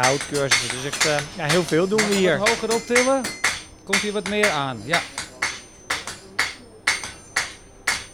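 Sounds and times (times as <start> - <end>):
speech: 0.0 - 5.2
blacksmith's hammer striking metal on an anvil while forging a square bar: 0.0 - 8.1.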